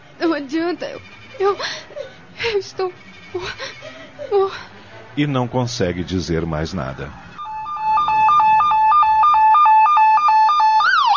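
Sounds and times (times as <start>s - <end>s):
speech: 0.2s - 7.2s
ambulance siren alternating between two tones: 6.5s - 11.1s.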